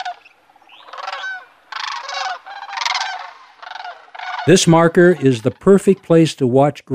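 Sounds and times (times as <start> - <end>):
cranes bugling in the early morning: 0.0 - 6.1
speech: 4.5 - 6.9.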